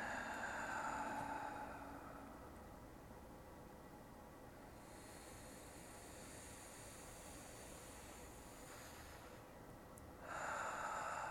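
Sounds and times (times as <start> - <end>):
slow airy exhale: 0.0 - 2.6, 4.7 - 9.6, 10.2 - 11.2.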